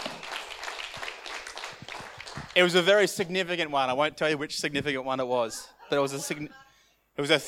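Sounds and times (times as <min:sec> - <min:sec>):
room full of people clapping for a birthday: 0:00.0 - 0:03.1
speech: 0:02.6 - 0:06.6, 0:07.2 - 0:07.4.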